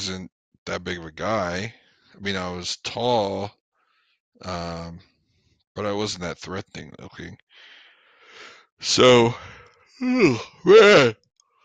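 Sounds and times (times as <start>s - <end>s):
speech: 0.0s - 3.6s, 4.4s - 5.1s, 5.8s - 7.7s, 8.8s - 11.2s
man yawning: 9.3s - 11.1s.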